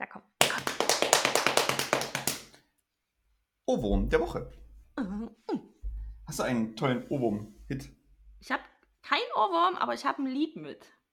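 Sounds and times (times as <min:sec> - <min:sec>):
hands drumming on thighs: 0:00.4 - 0:02.5
speech: 0:03.7 - 0:04.6, 0:06.3 - 0:11.0.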